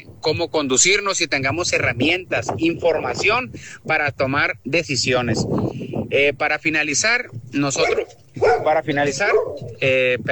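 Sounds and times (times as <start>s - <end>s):
speech: 0.0s - 10.3s
small dog barking: 7.8s - 9.8s.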